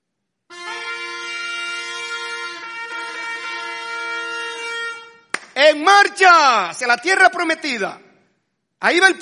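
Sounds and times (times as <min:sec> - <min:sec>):
trumpet call signalling a camp to set out on the march: 0:00.5 - 0:05.4
speech: 0:05.6 - 0:08.1, 0:08.8 - 0:09.2.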